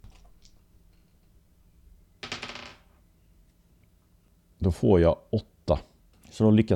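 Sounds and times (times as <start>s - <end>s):
two dice tumbling across a hard surface: 2.2s - 2.9s
speech: 4.6s - 6.7s.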